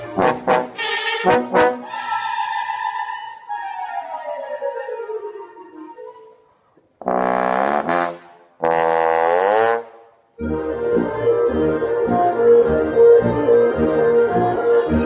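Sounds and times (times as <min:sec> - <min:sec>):
trombone glissando solo: 0:00.2 - 0:02.9, 0:07.0 - 0:15.0.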